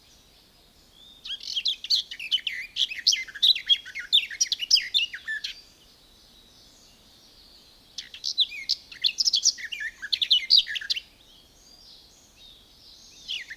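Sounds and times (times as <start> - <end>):
garden warbler singing hurried warbled phrases: 0.0 - 13.5.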